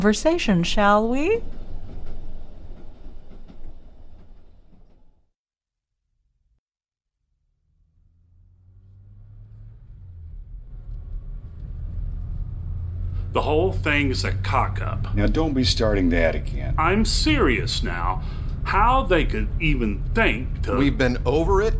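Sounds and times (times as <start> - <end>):
speech: 0.0 - 1.6, 13.5 - 21.7
passenger van engine and road rumble on a country road: 7.6 - 21.7.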